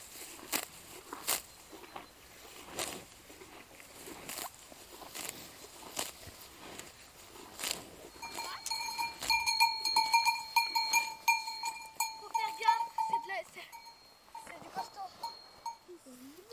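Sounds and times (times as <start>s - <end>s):
cowbells clanking on a herd of grazing cows: 1.1s - 2.5s, 7.8s - 16.5s.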